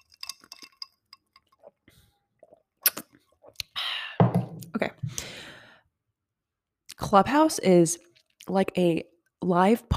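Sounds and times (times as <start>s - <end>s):
ice clinking in a glass: 0.0s - 1.6s
person slurping a matcha latte: 1.4s - 3.8s
speech: 7.1s - 9.9s.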